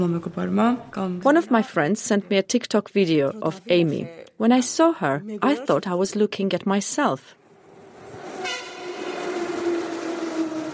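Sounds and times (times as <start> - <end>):
speech: 0.0 - 7.4
train passing at a station: 7.4 - 10.7
long sustained horn-like tone of a train: 8.3 - 10.7.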